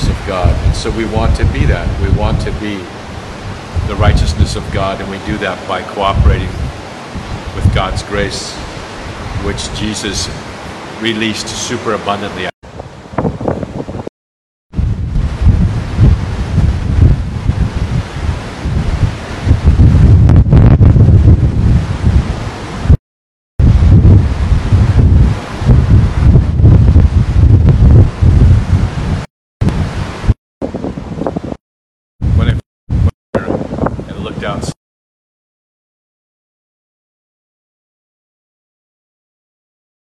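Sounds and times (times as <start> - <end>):
loud wind buffeting the microphone at the shore: 0.0 - 11.0, 12.6 - 14.1, 14.7 - 23.0, 23.6 - 31.6, 32.2 - 34.8
steady roar of ocean surf at the shoreline: 0.0 - 14.1, 14.8 - 23.0, 23.6 - 31.6
speech: 0.3 - 3.0, 3.9 - 6.8, 7.6 - 8.6, 9.4 - 12.6.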